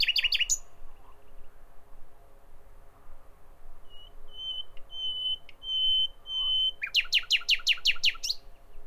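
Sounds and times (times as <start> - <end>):
common nightingale singing: 0.0 - 0.7, 3.9 - 8.4.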